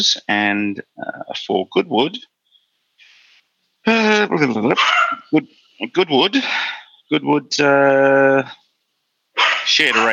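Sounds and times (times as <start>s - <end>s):
speech: 0.0s - 2.3s, 3.8s - 8.6s, 9.7s - 10.1s
dog barking: 4.8s - 5.3s, 9.4s - 10.1s.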